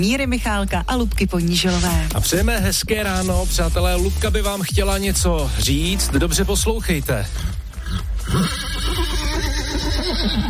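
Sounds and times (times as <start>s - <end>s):
speech: 0.0s - 9.0s, 10.2s - 10.4s
woman imitating a mare neighing: 7.9s - 10.4s.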